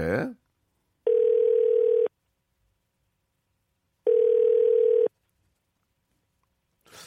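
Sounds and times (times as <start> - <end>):
telephone ringback tone while calling: 1.1 - 2.1, 4.0 - 5.1.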